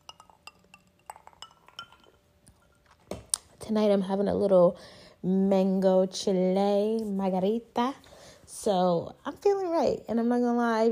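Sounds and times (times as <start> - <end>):
glasses clinking together during a toast: 0.0 - 3.1
speech: 3.7 - 10.9.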